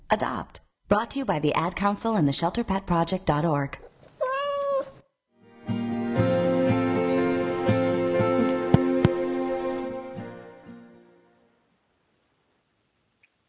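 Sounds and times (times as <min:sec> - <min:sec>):
speech: 0:00.1 - 0:03.8
cat meowing: 0:04.2 - 0:05.0
gentle instrumental music with soft plucked notes: 0:05.6 - 0:10.6.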